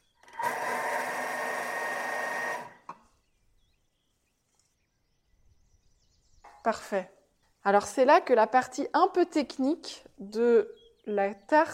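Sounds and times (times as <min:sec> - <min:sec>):
food processor blending speculoos biscuits with butter: 0:00.0 - 0:02.9
speech: 0:06.6 - 0:11.7.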